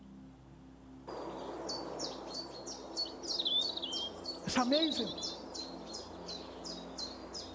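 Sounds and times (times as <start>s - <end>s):
robin singing: 1.1s - 7.5s
speech: 4.6s - 5.3s.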